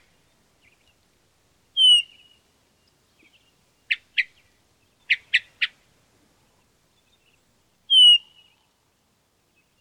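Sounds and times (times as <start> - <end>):
hermit thrush veee call: 1.8 - 2.3, 7.9 - 8.5.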